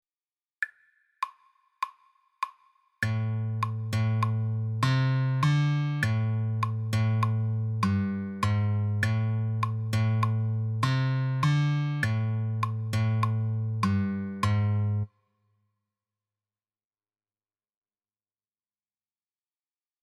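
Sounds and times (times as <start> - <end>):
spy-style music riff: 3.0 - 15.1.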